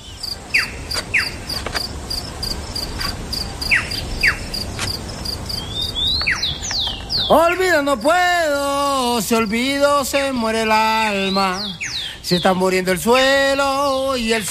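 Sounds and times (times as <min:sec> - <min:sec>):
little bird chirping: 0:00.0 - 0:08.2, 0:10.7 - 0:14.4
shrill insect trill: 0:00.0 - 0:14.4
speech: 0:07.3 - 0:14.4.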